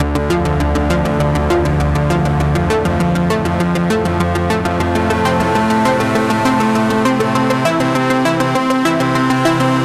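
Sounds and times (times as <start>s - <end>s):
sequenced trance music: 0.0s - 9.7s.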